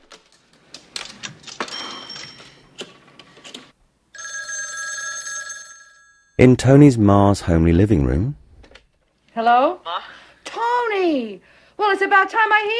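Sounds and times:
telephone ringing as a call is placed: 4.1s - 6.5s
speech: 6.4s - 8.4s, 9.4s - 10.2s, 10.8s - 12.7s.

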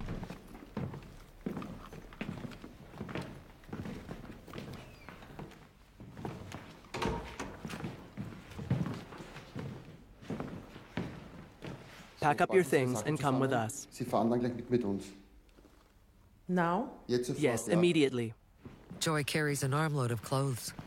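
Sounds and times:
footsteps of several men on a hard floor: 0.0s - 12.2s, 18.5s - 19.1s, 20.2s - 20.8s
speech: 12.2s - 15.2s, 16.5s - 18.4s, 19.0s - 20.8s.

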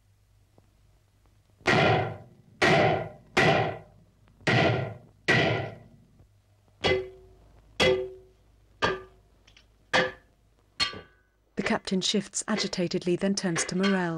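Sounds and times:
heavy hammering aboard a ship: 1.6s - 5.9s, 6.8s - 9.2s, 9.9s - 11.2s
speech: 11.7s - 14.1s.

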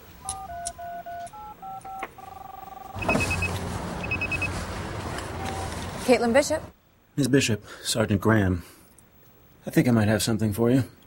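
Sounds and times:
cell phone keypad dialing tones: 0.2s - 4.5s, 5.3s - 5.9s
speech: 6.1s - 8.8s, 9.6s - 11.0s.

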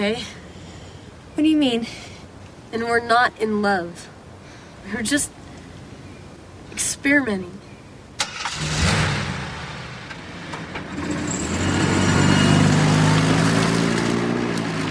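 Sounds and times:
speech: 0.0s - 0.4s, 1.4s - 2.1s, 2.7s - 4.1s, 4.8s - 5.4s, 6.8s - 7.6s
car engine starting and revving as the car drives off: 8.2s - 14.8s.

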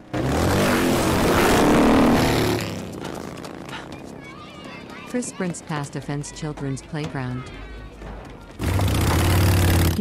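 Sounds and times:
motorbikes roaring past at speed: 0.0s - 6.0s, 8.6s - 10.0s
speech: 5.2s - 7.7s.

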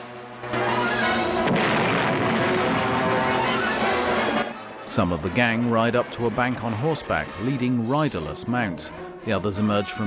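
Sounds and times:
rumbling roar of debris: 0.5s - 4.6s
loud explosion in a bank: 0.6s - 4.6s
speech: 4.9s - 10.0s.

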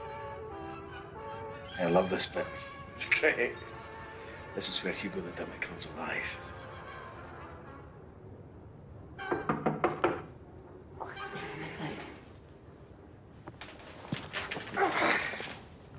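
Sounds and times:
soft hiss: 0.0s - 15.9s
speech: 1.8s - 3.7s, 4.6s - 6.5s
sharp hollow knocking on a door: 9.3s - 10.3s.

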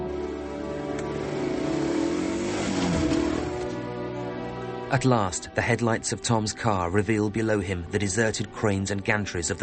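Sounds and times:
buggy engine driving away through the woods: 0.1s - 3.9s
speech: 4.9s - 9.5s.

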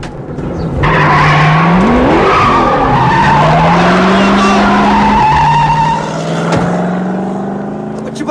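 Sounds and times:
car engine revving: 0.2s - 8.3s
car tires squealing as it accelerates away: 0.8s - 6.5s.

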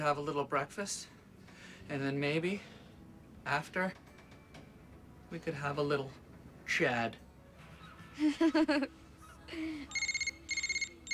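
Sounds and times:
speech: 0.0s - 1.2s, 1.8s - 2.8s, 3.4s - 4.0s, 5.3s - 7.2s, 8.2s - 10.0s
laughter: 8.2s - 9.0s
cell phone ringing with warbling trills: 9.9s - 11.1s.

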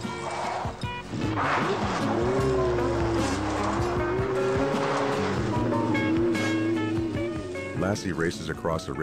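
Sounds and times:
tires squealing: 0.0s - 7.8s
police motorcycle engine roaring: 1.0s - 7.8s
speech: 7.9s - 9.0s.

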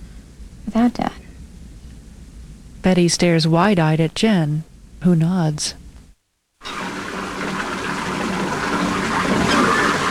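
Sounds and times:
speech: 0.7s - 1.2s, 2.8s - 5.8s
water running into a bathtub: 6.6s - 10.0s.

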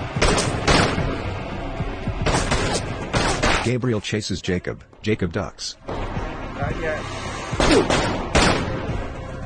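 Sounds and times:
gunshots fired over a partition fence: 0.2s - 1.2s, 2.2s - 3.7s, 7.6s - 8.9s
speech: 3.6s - 6.0s, 6.6s - 8.2s.

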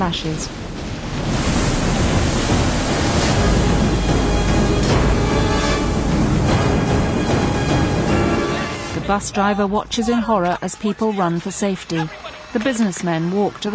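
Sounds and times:
speech: 0.0s - 1.5s, 9.1s - 13.7s
tidal wave crashing over city docks in a storm: 0.0s - 10.3s
rain lashing down in a storm: 0.0s - 13.0s.

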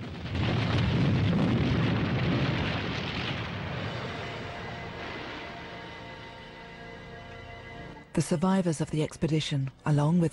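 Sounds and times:
boulders falling: 0.0s - 5.6s
cavern collapsing in a fiery explosion: 0.0s - 5.9s
speech: 8.2s - 10.3s.

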